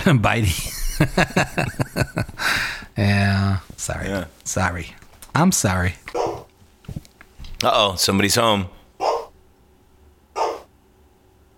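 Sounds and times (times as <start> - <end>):
speech: 0.0 - 6.2, 7.6 - 8.8
laughter: 0.4 - 2.5
dog barking at the door: 6.1 - 6.5, 9.0 - 9.4, 10.4 - 10.7.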